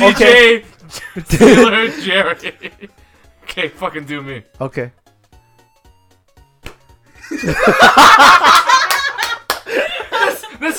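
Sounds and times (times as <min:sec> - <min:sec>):
speech: 0:00.0 - 0:05.0, 0:07.3 - 0:08.8
people laughing: 0:00.8 - 0:02.9, 0:07.2 - 0:10.7
hand slapping a belly: 0:06.6 - 0:07.0.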